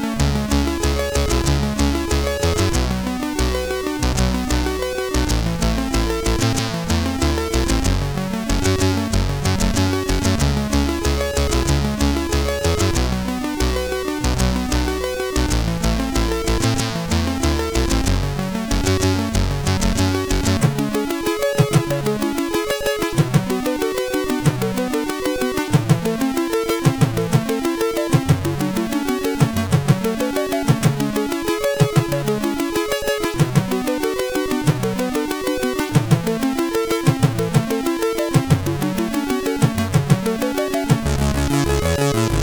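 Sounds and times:
guitar on CSG8580R5 SID chip: 0.2 - 42.4.

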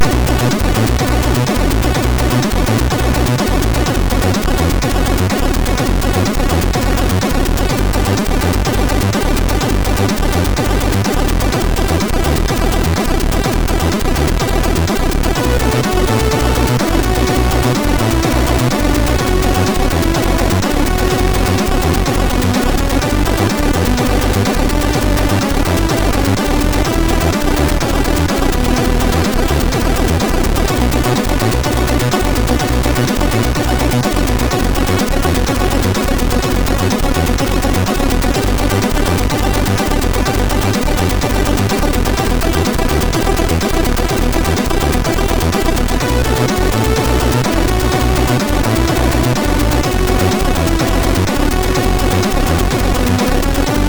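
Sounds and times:
chiptune intro music on MOS6581R3 SID chip: 0.0 - 53.8.

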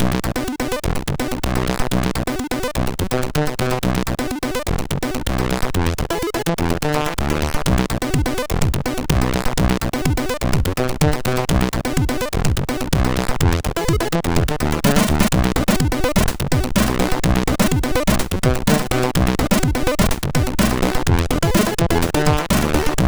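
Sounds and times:
funk chiptune music from MOS6581R3 sound chip: 0.1 - 23.0.

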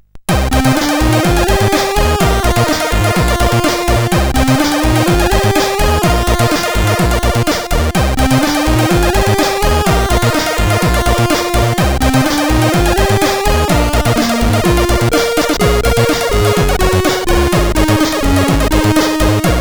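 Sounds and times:
chiptune music on a CSG8580R5 sound chip: 0.3 - 19.5.

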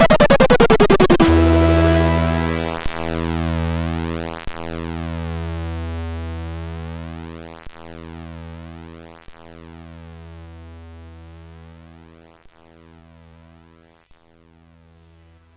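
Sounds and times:
MOS 6581 SID chip game music: 0.0 - 3.4.

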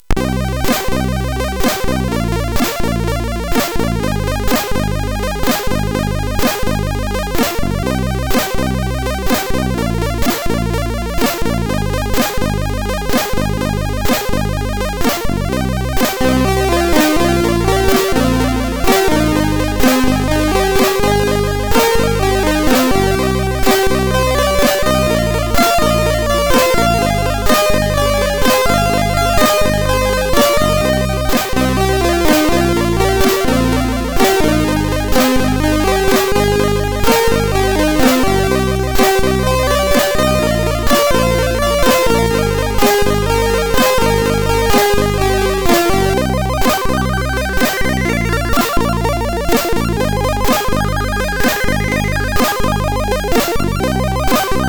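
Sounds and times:
MOS6581R4 SID chip synth music: 0.0 - 54.6.

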